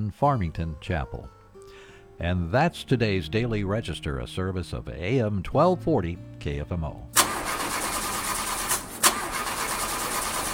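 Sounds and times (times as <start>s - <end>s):
speech: 0.1s - 1.4s, 2.2s - 7.2s
car engine cranking without catching: 7.2s - 10.5s.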